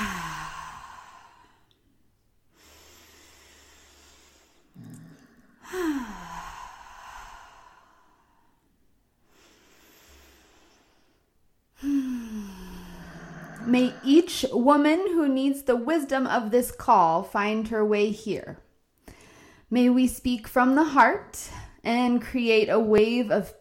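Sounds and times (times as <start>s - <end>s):
slow deep breathing in through the nose and out through the mouth: 0.0s - 1.8s, 2.5s - 14.3s, 19.0s - 19.7s
speech: 13.7s - 18.6s, 19.7s - 23.5s.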